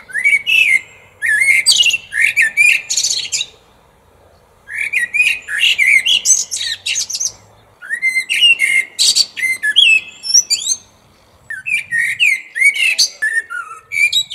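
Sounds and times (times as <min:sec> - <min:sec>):
French blackbird singing: 0:00.0 - 0:14.3.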